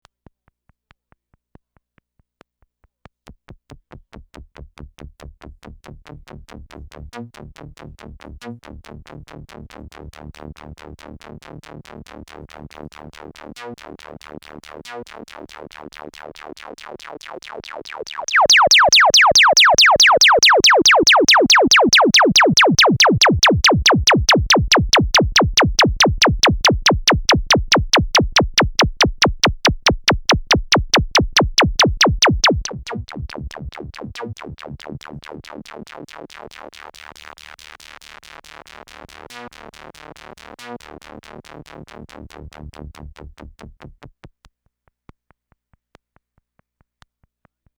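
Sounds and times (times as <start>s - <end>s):
bandpass filtered bass: 18.2s - 35.7s, 41.8s - 44.0s.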